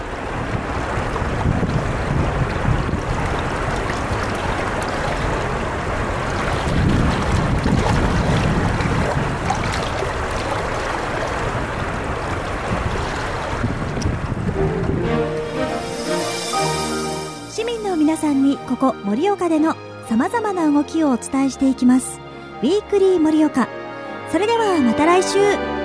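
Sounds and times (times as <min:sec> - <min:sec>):
river murmuring and rushing: 0:00.0 - 0:18.2
brief tonal musical sound: 0:14.6 - 0:19.1
speech: 0:18.3 - 0:25.7.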